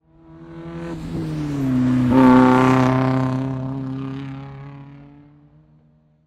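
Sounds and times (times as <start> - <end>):
race car passing by: 0.0 - 6.2.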